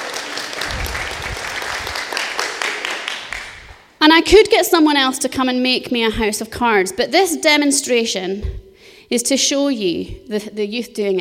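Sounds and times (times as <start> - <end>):
crowd applauding for a woman who helped with a demonstration: 0.0 - 3.9
speech: 4.1 - 11.1.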